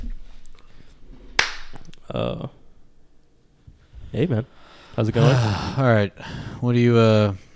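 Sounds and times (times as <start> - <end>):
sharp loud hand clap: 1.4 - 1.8
speech: 2.1 - 2.6, 4.1 - 7.5.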